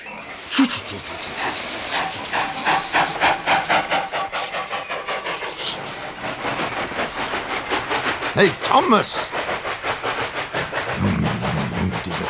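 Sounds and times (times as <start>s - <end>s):
steam locomotive hissing and chuffing: 0.0s - 12.2s
laughter: 0.2s - 6.1s, 10.9s - 12.2s
speech: 0.6s - 2.9s, 8.4s - 9.4s.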